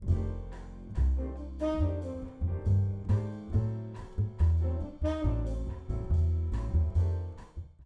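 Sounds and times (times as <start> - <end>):
bass in a rough mix: 0.0 - 7.8.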